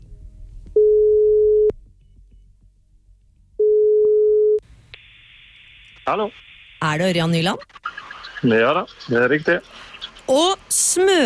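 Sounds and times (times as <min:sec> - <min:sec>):
telephone call ringing tones: 0:00.8 - 0:01.7, 0:03.6 - 0:04.6
speech: 0:06.1 - 0:11.2.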